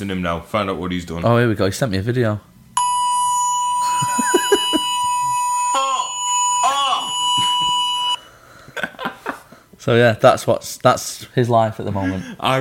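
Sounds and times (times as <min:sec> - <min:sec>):
speech: 0:00.0 - 0:02.5, 0:09.8 - 0:12.5
fire alarm blaring with a piercing electronic tone: 0:02.8 - 0:08.2
laughter: 0:03.8 - 0:06.1, 0:07.0 - 0:08.0, 0:08.7 - 0:09.5, 0:11.8 - 0:12.5.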